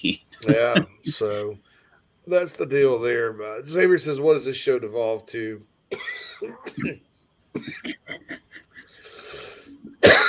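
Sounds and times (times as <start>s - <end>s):
speech: 0.0s - 8.4s
laughter: 0.4s - 1.3s, 7.7s - 9.0s
person coughing harshly: 5.9s - 7.0s, 7.6s - 8.5s, 10.0s - 10.2s
throat clearing: 6.4s - 7.0s.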